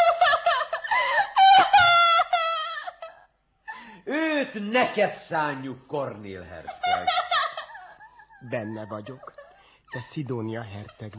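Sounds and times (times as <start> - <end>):
woman sobbing and crying: 0.0 - 4.5, 6.7 - 10.3
speech: 4.5 - 7.3, 8.4 - 11.1.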